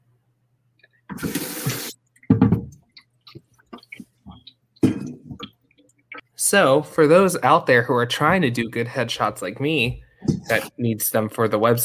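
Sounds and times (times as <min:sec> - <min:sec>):
tap running water into a water bottle: 0:01.1 - 0:02.6
speech: 0:06.5 - 0:11.8.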